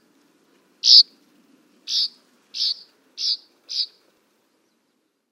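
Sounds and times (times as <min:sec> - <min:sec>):
northern rough-winged swallow rough buzzy calls: 0:00.8 - 0:01.1, 0:01.9 - 0:04.0.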